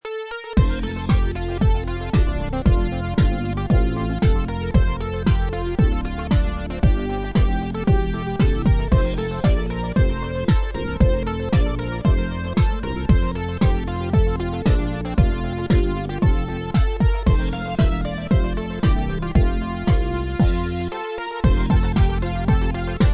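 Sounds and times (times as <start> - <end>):
house dance music: 0.4 - 23.1.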